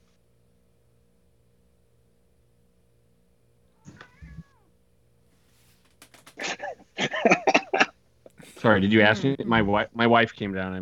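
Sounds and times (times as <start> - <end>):
cat meowing: 3.8 - 4.7
laughter: 6.3 - 9.8
speech: 8.6 - 10.7.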